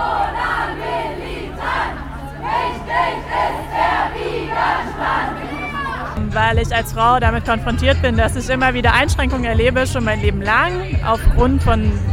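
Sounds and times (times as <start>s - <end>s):
large crowd cheering and shouting in rhythmic bursts: 0.0s - 6.2s
constant low hum: 0.0s - 9.3s
speech: 6.4s - 12.1s.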